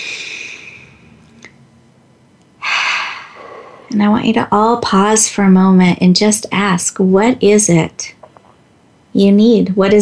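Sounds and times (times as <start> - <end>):
deep breath during a guided relaxation exercise: 0.0 - 1.2, 2.6 - 4.0
speech: 3.9 - 8.2, 9.2 - 10.0.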